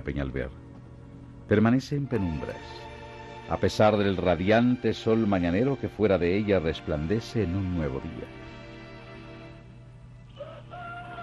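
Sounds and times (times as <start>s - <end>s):
speech: 0.0s - 0.6s, 1.5s - 2.9s, 3.5s - 8.6s
steady low hum: 0.0s - 11.2s
distant rooster crowing: 10.3s - 11.2s.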